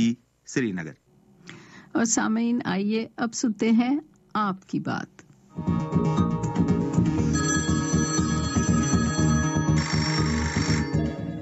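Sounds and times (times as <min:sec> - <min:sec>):
speech: 0:00.0 - 0:01.0, 0:02.0 - 0:06.4
electronic telephone ringtone as a listener phones in: 0:07.2 - 0:11.3.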